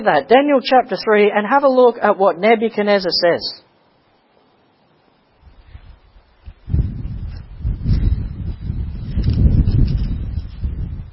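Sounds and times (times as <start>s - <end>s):
speech: 0.0s - 3.6s
rustling leaves: 4.5s - 11.1s
gusty wind rushing: 5.3s - 11.1s.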